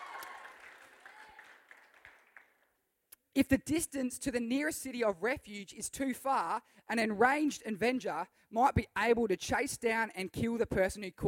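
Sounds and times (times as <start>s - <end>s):
audience applause: 0.0s - 2.7s
speech: 3.4s - 11.2s.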